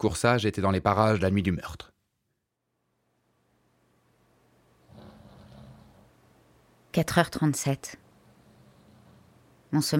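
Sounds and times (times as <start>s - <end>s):
speech: 0.0s - 1.9s, 6.9s - 8.0s, 9.7s - 9.9s
quiet hum: 0.0s - 9.9s
man snoring asleep on a sofa: 4.9s - 6.1s, 8.2s - 9.4s.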